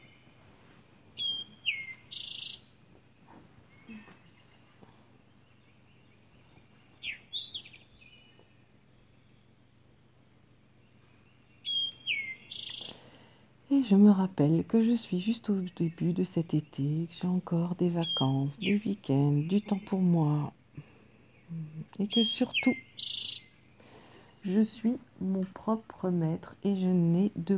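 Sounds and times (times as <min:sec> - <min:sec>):
soft hum: 0:00.0 - 0:27.5
bird singing whistled chirping phrases: 0:01.2 - 0:03.0, 0:03.7 - 0:09.9, 0:10.8 - 0:13.1, 0:13.7 - 0:27.5
speech: 0:13.8 - 0:20.6, 0:21.5 - 0:23.2, 0:24.4 - 0:27.5.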